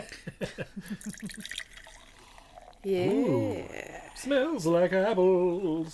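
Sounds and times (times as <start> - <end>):
speech: 0.3 - 1.7, 2.8 - 5.9
light fizzing crackle of a sparkling drink: 0.9 - 3.9
sparkling drink glugging into a glass: 0.9 - 4.3.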